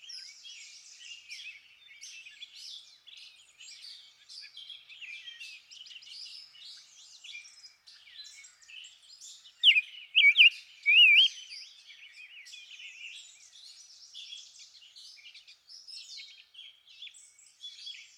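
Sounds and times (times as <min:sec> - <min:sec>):
rose-breasted grosbeak song: 0:09.6 - 0:11.5.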